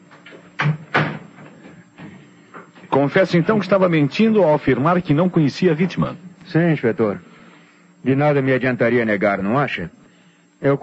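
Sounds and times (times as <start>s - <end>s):
door being closed: 0.6s - 2.2s
speech: 3.0s - 7.3s, 8.0s - 10.0s, 10.6s - 10.8s.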